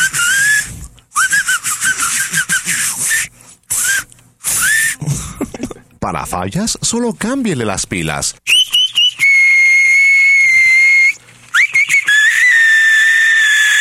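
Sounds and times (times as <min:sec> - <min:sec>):
battery-powered whistling keychain gadget whistling: 0:00.0 - 0:05.0, 0:08.5 - 0:13.7
speech: 0:06.1 - 0:08.5.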